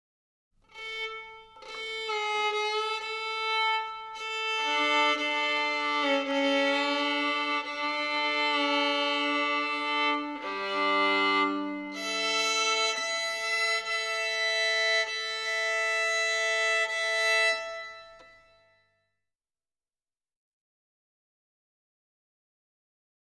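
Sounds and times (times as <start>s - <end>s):
violin tuning: 0.7s - 18.7s.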